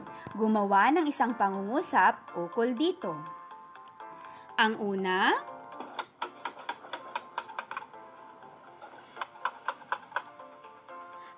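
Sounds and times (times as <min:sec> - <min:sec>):
speech: 0:00.4 - 0:03.4, 0:04.6 - 0:05.5
hammer strikes: 0:05.8 - 0:08.0, 0:08.7 - 0:10.3.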